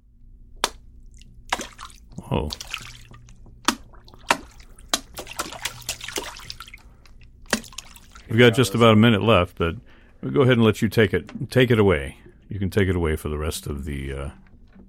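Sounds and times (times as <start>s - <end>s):
fingers flicking into water making bass plops: 0.6s - 8.3s
speech: 2.3s - 2.7s, 8.3s - 14.4s
person exclaiming: 8.3s - 9.0s.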